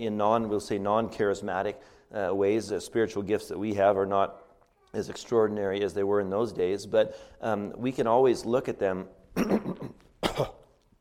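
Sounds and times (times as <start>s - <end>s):
speech: 0.0s - 10.6s
preacher clearing throat before a sermon: 9.4s - 10.8s.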